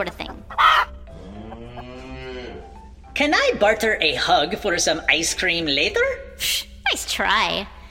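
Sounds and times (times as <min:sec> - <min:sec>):
speech: 0:00.0 - 0:00.4, 0:03.2 - 0:07.8
loud chicken cluck or squawk: 0:00.2 - 0:01.9.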